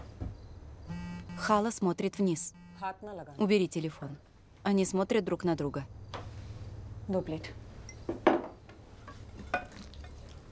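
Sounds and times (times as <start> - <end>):
speech: 1.4 - 6.0, 7.1 - 8.2
food being served onto a plate at a table at night: 9.1 - 10.3.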